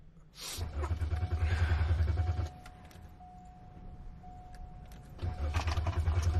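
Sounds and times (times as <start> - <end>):
snow-covered car engine cranking and failing to start: 0.6 - 3.4, 4.3 - 6.3.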